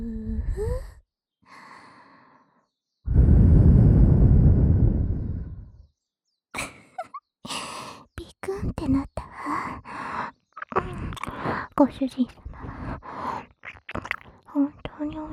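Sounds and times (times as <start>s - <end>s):
deep breath in and out: 0.0s - 5.8s, 9.3s - 10.4s, 12.4s - 13.6s
speech: 11.8s - 12.4s, 14.6s - 15.3s.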